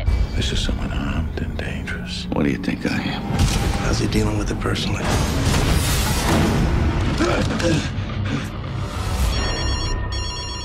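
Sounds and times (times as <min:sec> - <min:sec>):
speech: 0:00.5 - 0:06.6, 0:07.2 - 0:08.5
telephone ringing with a bright electronic trill: 0:09.3 - 0:10.6.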